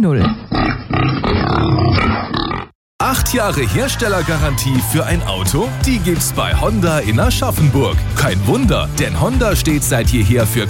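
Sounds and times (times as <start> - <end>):
speech: 0.0 - 0.4, 3.4 - 10.6
wild boar grunting: 0.0 - 2.7.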